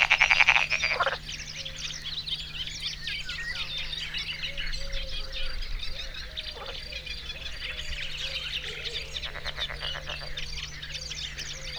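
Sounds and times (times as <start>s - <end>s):
frog croaking with a fast rattling burst: 0.0s - 1.3s, 9.1s - 10.6s, 11.6s - 11.7s
birds twittering and chirping: 0.0s - 11.7s
constant low hum: 0.0s - 11.7s.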